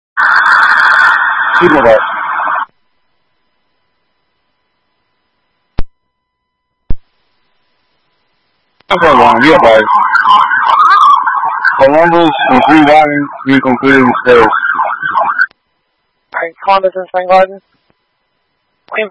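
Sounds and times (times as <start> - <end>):
emergency vehicle sirens wailing: 0.2 - 2.7, 8.9 - 15.5
speech: 1.6 - 2.2, 8.9 - 10.6, 11.8 - 15.0, 16.4 - 17.8, 18.9 - 19.1.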